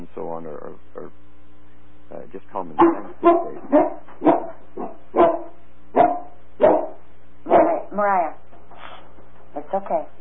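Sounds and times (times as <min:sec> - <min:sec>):
speech: 0:02.3 - 0:04.0
dog barking: 0:02.8 - 0:07.9.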